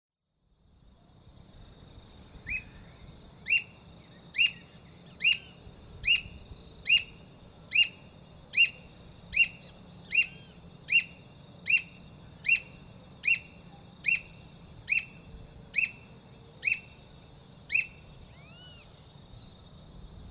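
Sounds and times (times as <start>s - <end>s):
squirrel cuckoo Piaya cayana: 5.2s - 17.0s.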